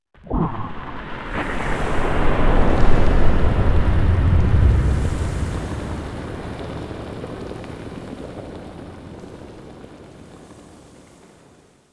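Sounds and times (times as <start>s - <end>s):
bubbles: 0.2s - 8.9s.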